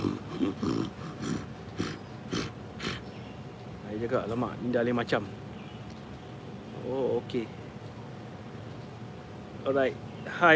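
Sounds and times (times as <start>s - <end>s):
voice imitating a wild boar grunting growl: 0.0s - 3.0s
speech: 4.1s - 5.4s, 6.9s - 7.6s, 9.6s - 10.5s.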